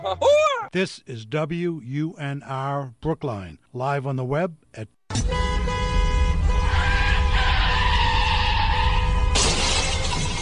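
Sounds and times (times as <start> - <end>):
speech: 0.0 - 5.5
blaring horn-like wail: 5.2 - 9.6
tires squealing in a long loud skid: 6.5 - 10.4
crash of shattering impact: 9.3 - 10.4.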